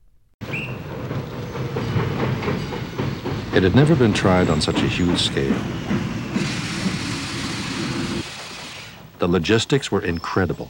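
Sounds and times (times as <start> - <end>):
train cars loaded with travelling spectacles clattering over rails: 0.4 - 8.7
speech: 3.6 - 6.1, 9.2 - 10.6.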